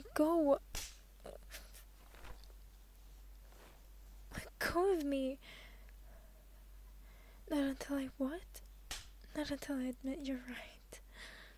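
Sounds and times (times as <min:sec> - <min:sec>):
speech: 0:00.0 - 0:00.7, 0:04.8 - 0:05.6, 0:07.5 - 0:08.6, 0:09.4 - 0:10.8
sharp smacks: 0:00.7 - 0:01.0, 0:08.9 - 0:09.2
faint rustling: 0:01.2 - 0:05.1.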